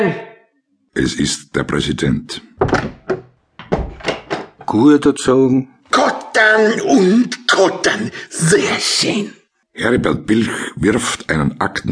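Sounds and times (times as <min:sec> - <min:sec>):
speech: 0:00.0 - 0:00.3, 0:01.0 - 0:03.0, 0:04.7 - 0:11.8
heavy knocking on a wooden door: 0:02.6 - 0:04.5.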